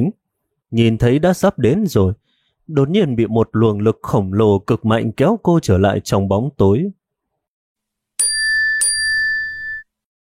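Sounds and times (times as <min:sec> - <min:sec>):
speech: 0:00.0 - 0:07.0
WeChat new-message notification chiming on a phone: 0:08.2 - 0:09.9.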